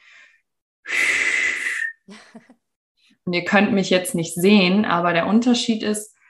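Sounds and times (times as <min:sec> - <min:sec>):
breathy exhale whistling between the lips: 0:00.0 - 0:02.1
speech: 0:03.2 - 0:06.1.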